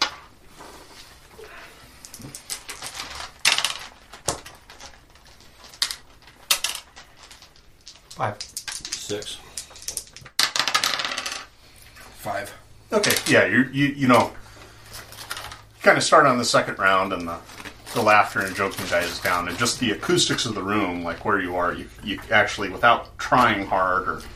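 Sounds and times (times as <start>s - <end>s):
dice rattling and clattering in a bag: 1.9s - 11.5s, 17.2s - 22.2s
speech: 8.2s - 8.5s, 9.1s - 9.5s, 12.2s - 14.4s, 15.8s - 24.3s.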